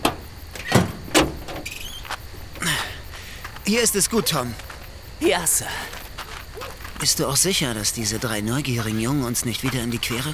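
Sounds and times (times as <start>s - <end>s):
mechanical clunks and squeaks: 0.0s - 3.2s
vehicle with a truck-like engine rolling in and stopping: 0.0s - 4.2s
speech: 3.7s - 6.0s, 6.6s - 10.3s.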